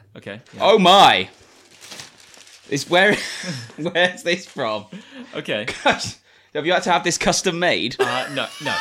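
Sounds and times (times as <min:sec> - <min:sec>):
speech: 0:00.2 - 0:01.4, 0:02.7 - 0:08.8
packaging rustling and crinkling as a hat box is opened: 0:00.4 - 0:04.9
laughter: 0:08.0 - 0:08.8.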